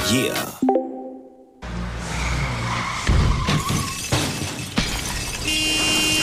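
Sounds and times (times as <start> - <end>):
speech: 0.1 - 0.5
car tires screeching in a skid: 1.6 - 6.2
car crash with a loud crunch: 2.1 - 6.2
glass shattering: 3.6 - 5.5.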